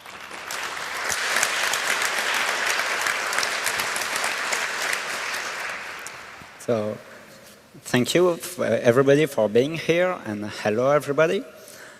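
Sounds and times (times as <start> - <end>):
audience applause: 0.0 - 6.6
speech: 6.7 - 7.1, 7.8 - 11.6.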